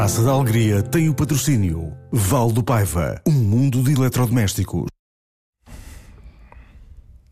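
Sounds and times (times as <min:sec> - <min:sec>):
speech: 0:00.1 - 0:04.9
heavy breath blowing into the microphone: 0:05.7 - 0:07.1.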